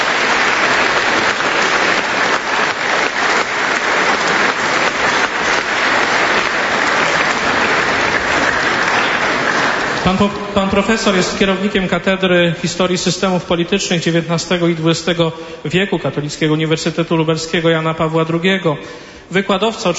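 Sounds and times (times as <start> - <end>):
audience applause: 0.0 - 11.9
speech: 10.1 - 19.9.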